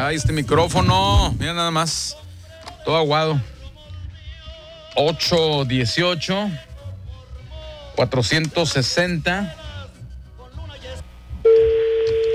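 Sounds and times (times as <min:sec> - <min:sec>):
speech: 0:00.0 - 0:03.6, 0:05.0 - 0:06.7, 0:08.0 - 0:09.6
telephone tone of a call being placed: 0:11.4 - 0:12.3.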